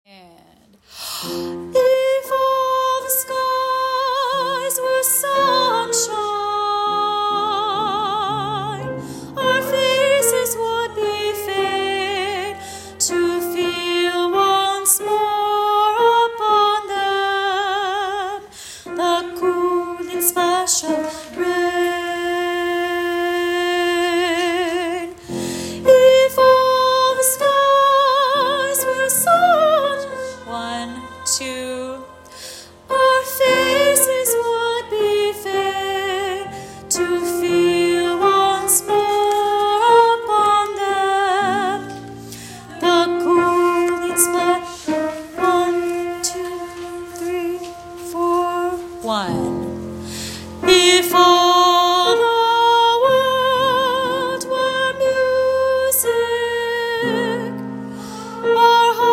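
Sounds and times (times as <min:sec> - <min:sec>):
soprano: 0:01.2 - 0:59.1.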